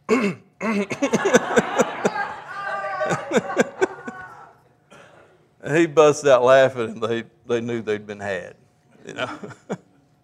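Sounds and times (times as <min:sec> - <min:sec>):
person imitating throat clearing: 0:00.0 - 0:01.0
speech: 0:00.1 - 0:02.0, 0:05.7 - 0:09.9
laughter: 0:00.8 - 0:04.6, 0:09.0 - 0:10.0.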